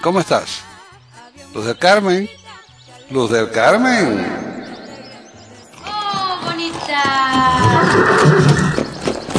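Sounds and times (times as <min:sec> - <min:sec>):
speech: 0:00.0 - 0:00.7, 0:01.5 - 0:02.4, 0:03.1 - 0:04.4
horse neighing: 0:03.7 - 0:09.2.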